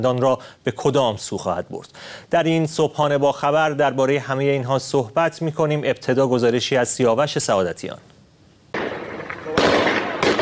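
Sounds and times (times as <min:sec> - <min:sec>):
speech: 0:00.0 - 0:08.2
gunfire bursts from firearms shot at protesters: 0:08.8 - 0:10.3.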